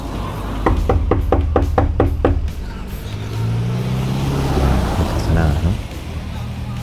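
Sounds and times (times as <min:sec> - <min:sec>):
steady low rumble of a vehicle engine: 0:00.0 - 0:06.8
sharp knocks on a door: 0:00.6 - 0:04.2.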